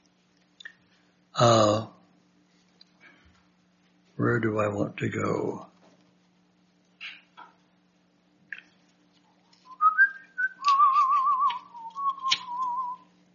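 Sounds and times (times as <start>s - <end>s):
faint low hum: 0.0s - 13.3s
speech: 1.4s - 1.9s, 4.5s - 5.7s
person whistling a short wavering tune: 9.7s - 13.1s.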